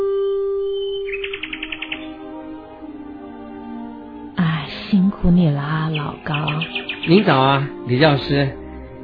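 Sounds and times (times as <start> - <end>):
small birds chirping in trees on a spring day: 0.1 - 2.7, 4.4 - 8.5
speech: 5.0 - 8.6.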